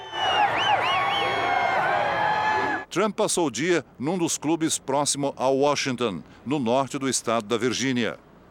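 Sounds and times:
rising and falling whistle-like tones: 0.0 - 1.5
crowd cheering and shouting at a passing motorcade: 0.0 - 2.9
speech: 2.9 - 8.3.

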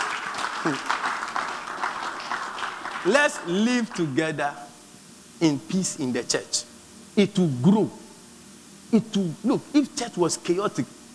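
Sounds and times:
crowd clapping: 0.0 - 4.2
speech: 0.6 - 1.0, 3.0 - 4.7, 5.4 - 8.0, 8.9 - 11.1.

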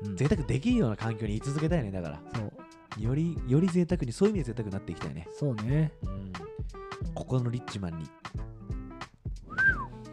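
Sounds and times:
speech: 0.1 - 8.4
person whistling a gliding note: 9.4 - 10.0.

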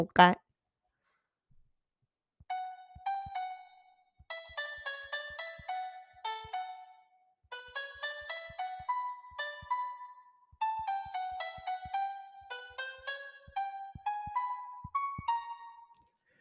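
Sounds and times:
speech: 0.0 - 0.4
simple single-note melody on a smartphone piano app: 2.5 - 16.1.

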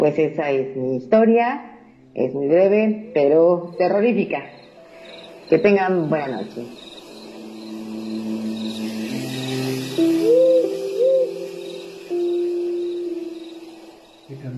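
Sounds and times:
speech: 0.0 - 4.6, 5.5 - 6.8
faint cricket-like chirps: 3.6 - 14.5
pair of owls hooting: 4.8 - 14.3
steady eerie low drone: 4.8 - 14.5.

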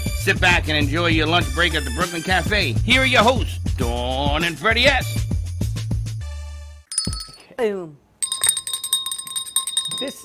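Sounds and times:
speech: 0.2 - 5.2, 7.6 - 8.0, 10.0 - 10.2
small bell ringing rapidly with a broken buzzing mechanism: 6.9 - 7.5, 8.2 - 10.2.

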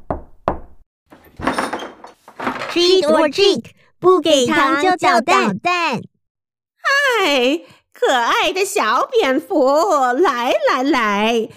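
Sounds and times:
knocking on a door: 0.0 - 0.8
speech: 2.8 - 6.1, 7.1 - 11.5.

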